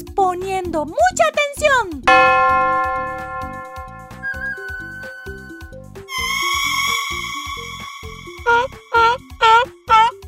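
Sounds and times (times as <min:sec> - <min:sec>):
speech: 0:00.0 - 0:02.7
bell ringing: 0:02.1 - 0:09.1
thin sustained flute note: 0:02.1 - 0:09.3.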